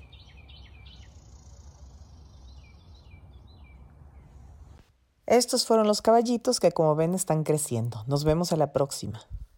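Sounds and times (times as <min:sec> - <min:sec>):
small birds chirping in quick high trills: 0:00.0 - 0:04.9
steady outdoor hiss: 0:00.0 - 0:08.2
speech: 0:05.3 - 0:09.4.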